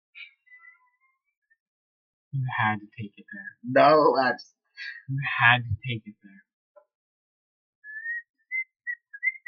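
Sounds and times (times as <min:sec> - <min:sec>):
speech: 0:02.3 - 0:06.5
person whistling a tune by blowing air out: 0:07.9 - 0:09.4.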